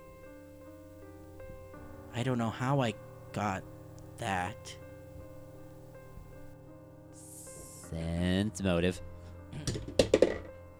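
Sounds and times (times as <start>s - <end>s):
speech: 2.2s - 4.8s, 7.9s - 10.0s
die falling out of dice roller and bouncing: 9.6s - 10.6s.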